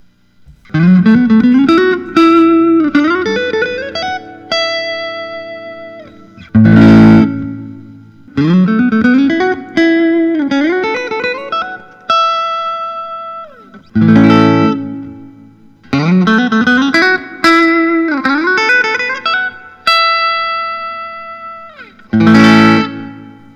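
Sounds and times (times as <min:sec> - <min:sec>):
1959 Fender Stratocaster electric guitar: 0:00.4 - 0:23.5.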